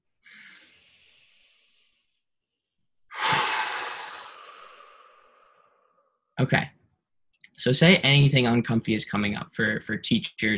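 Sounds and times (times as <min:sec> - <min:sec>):
deep breath during a guided calming exercise: 0:00.2 - 0:02.2, 0:03.1 - 0:06.2
speech: 0:06.4 - 0:06.8, 0:07.6 - 0:10.5.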